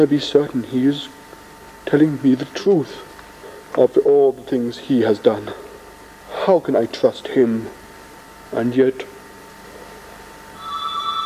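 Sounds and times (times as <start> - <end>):
speech: 0.0 - 1.2, 1.8 - 3.1, 3.7 - 5.7, 6.4 - 7.8, 8.5 - 9.1
telephone bell ringing: 10.6 - 11.2.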